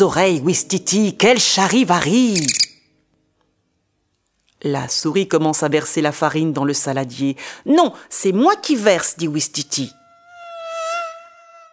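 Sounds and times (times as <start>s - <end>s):
speech: 0.0s - 2.6s, 4.6s - 10.0s
fly buzzing: 9.9s - 11.7s.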